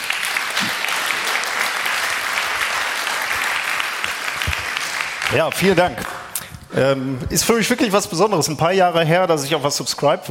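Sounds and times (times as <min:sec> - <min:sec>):
audience applause: 0:00.0 - 0:06.4
speech: 0:05.3 - 0:10.2.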